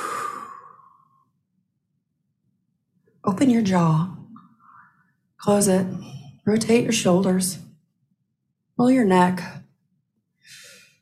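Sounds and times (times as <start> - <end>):
deep breath exhale: 0.0 - 1.3
speech: 3.2 - 4.2, 5.4 - 7.6, 8.8 - 9.6.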